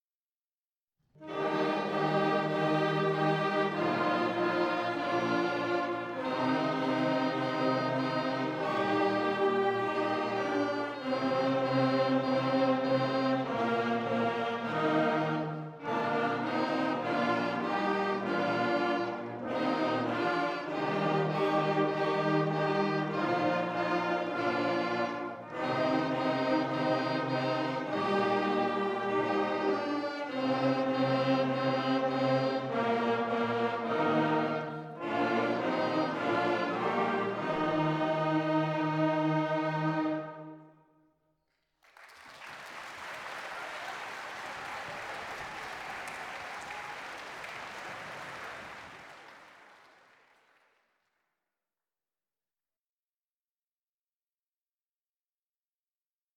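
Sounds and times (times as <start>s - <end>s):
christmas song: 1.2s - 40.8s.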